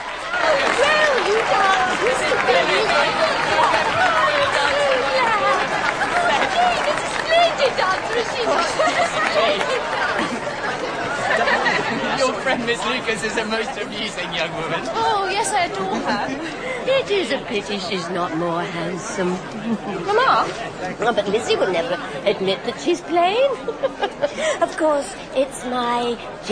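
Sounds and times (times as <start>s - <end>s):
crowd clapping at the end of a dance: 0.0s - 13.6s
many voices chattering and calling out: 0.0s - 26.5s
laughter: 0.4s - 17.5s, 19.4s - 21.5s, 23.3s - 24.9s
speech: 12.2s - 26.5s.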